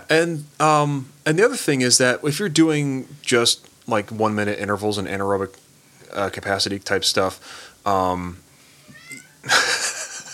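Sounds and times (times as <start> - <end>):
speech: 0.1 - 8.4, 9.4 - 9.7
cat meowing: 8.8 - 9.5
laughter: 9.4 - 10.3.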